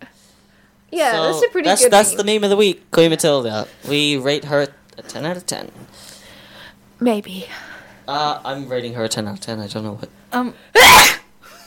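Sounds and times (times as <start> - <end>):
speech: 0.9 - 6.1, 7.0 - 11.2
sneeze: 10.7 - 11.3.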